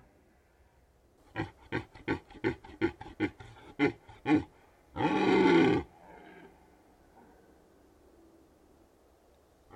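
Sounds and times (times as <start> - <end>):
red deer stag rutting call in the Carpathian Mountains of Bucovina, Romania: 1.3 - 6.6.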